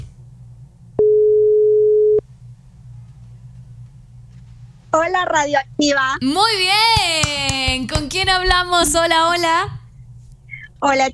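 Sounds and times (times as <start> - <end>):
low hum: 0.0 - 11.1
steady telephone tone as a call is placed into a radio phone-in: 1.0 - 2.2
speech: 5.0 - 9.8, 10.8 - 11.1.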